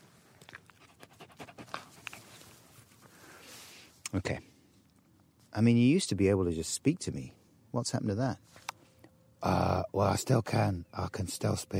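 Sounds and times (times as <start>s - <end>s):
dog panting: 0.7s - 2.2s
speech: 4.1s - 4.5s, 5.5s - 8.6s, 9.4s - 11.7s.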